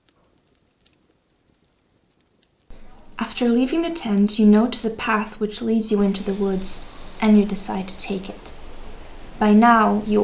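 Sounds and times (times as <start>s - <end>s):
campfire crackling: 0.0s - 10.2s
speech: 3.4s - 8.6s, 9.4s - 10.2s.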